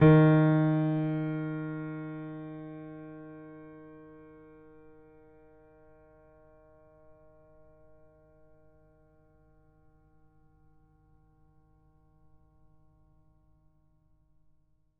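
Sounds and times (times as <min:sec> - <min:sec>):
piano note D sharp 3: 0:00.0 - 0:04.9.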